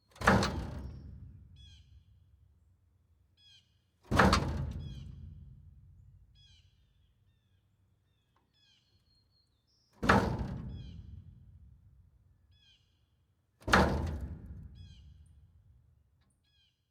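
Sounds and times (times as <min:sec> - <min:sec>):
dumpster door closing: 0:00.2 - 0:01.1, 0:04.1 - 0:05.2, 0:13.6 - 0:14.7.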